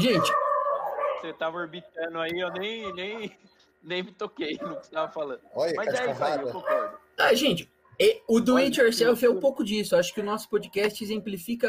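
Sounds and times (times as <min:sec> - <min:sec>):
speech: 0:00.0 - 0:00.4, 0:01.2 - 0:11.6
dog barking: 0:00.0 - 0:01.4, 0:02.4 - 0:03.2, 0:04.6 - 0:05.0, 0:06.6 - 0:07.0.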